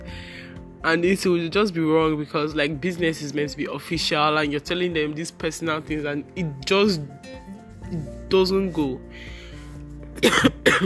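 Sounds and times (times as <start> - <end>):
speech: 0.8 - 9.4, 10.2 - 10.8
person coughing with a rough throaty edge: 10.2 - 10.8.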